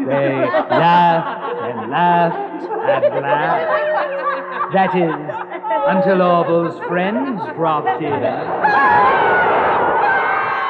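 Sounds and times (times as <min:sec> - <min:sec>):
laughter: 0:00.0 - 0:10.6
speech: 0:00.1 - 0:09.6
children screaming: 0:08.5 - 0:10.6.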